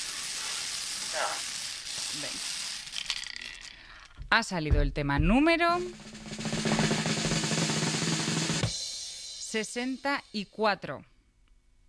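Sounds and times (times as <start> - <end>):
lottery drum spinning with numbered balls: 0.0 - 3.7, 5.2 - 8.8
numbered balls clattering in a lottery drum: 0.8 - 4.3
speech: 2.2 - 2.6, 4.3 - 6.1, 9.5 - 11.1.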